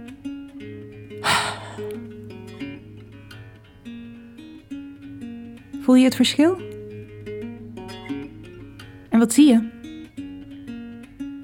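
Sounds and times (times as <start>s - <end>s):
deep breath in and out: 1.2s - 2.0s
speech: 5.9s - 6.7s, 9.3s - 9.7s.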